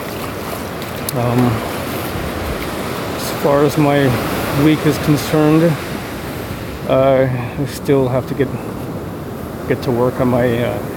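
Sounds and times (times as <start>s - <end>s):
someone wading through incoming high tide water: 0.0s - 6.9s
speech: 1.1s - 1.8s, 3.4s - 5.9s, 6.9s - 8.8s, 9.7s - 10.9s.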